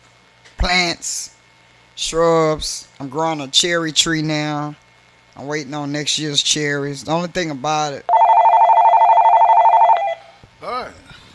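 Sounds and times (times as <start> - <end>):
speech: 0.6 - 1.4, 2.0 - 4.8, 5.4 - 8.1
telephone ringing for an incoming caller: 8.1 - 10.4.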